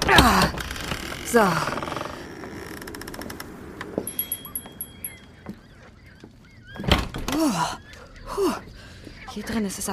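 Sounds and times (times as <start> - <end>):
stuck door rattling and clicking as it is tugged: 0.0 - 7.7
stuck door squeaks and scrapes: 0.6 - 5.9
speech: 1.3 - 1.7, 7.4 - 7.8, 9.4 - 9.9.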